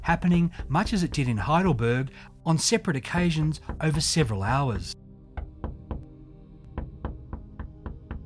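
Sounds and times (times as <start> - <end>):
speech: 0.1 - 5.0
solid knocks on a door or wall: 3.6 - 4.1, 4.8 - 6.1, 6.7 - 8.2.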